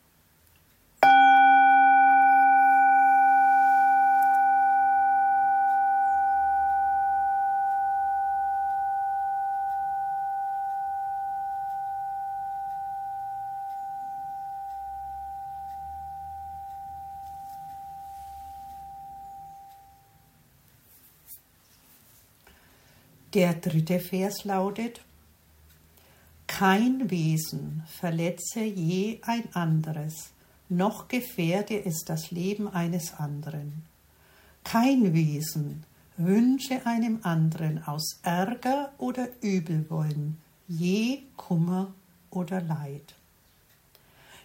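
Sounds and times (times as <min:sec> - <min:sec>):
single bell strike ringing out: 0:01.0 - 0:20.3
speech: 0:23.3 - 0:25.0, 0:26.6 - 0:33.9, 0:34.6 - 0:43.2.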